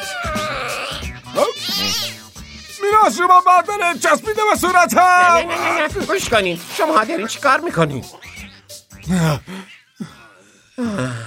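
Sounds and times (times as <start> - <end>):
cat meowing in loud high wavering cries: 0.0 - 3.2
speech: 3.1 - 8.3, 9.1 - 9.7.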